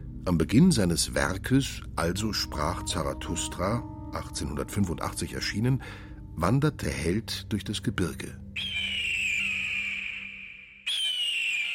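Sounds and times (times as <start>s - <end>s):
speech: 0.2s - 8.8s
eagle crying: 8.6s - 11.7s.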